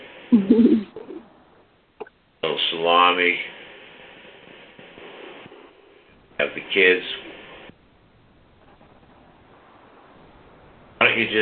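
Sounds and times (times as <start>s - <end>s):
speech: 0.3s - 0.9s, 2.7s - 3.6s, 6.4s - 7.3s, 11.2s - 11.4s
birds cooing: 0.4s - 1.2s.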